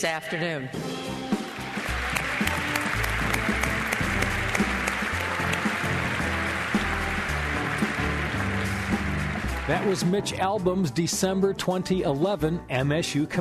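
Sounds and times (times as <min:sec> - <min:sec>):
speech: 0:00.0 - 0:01.1, 0:09.7 - 0:13.3
sustained applause from a large commencement crowd: 0:01.4 - 0:10.4.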